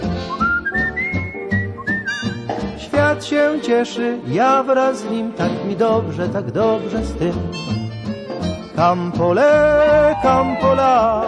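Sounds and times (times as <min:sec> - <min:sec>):
person whistling a tune alone: 0:00.2 - 0:02.4, 0:09.8 - 0:11.2
speech: 0:03.2 - 0:07.8, 0:08.8 - 0:11.2.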